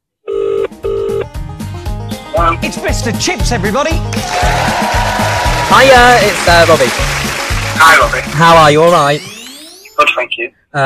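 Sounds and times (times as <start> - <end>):
phone line ringing tone from an outgoing call: 0.3 - 1.3
speech: 2.4 - 9.3, 10.3 - 10.8.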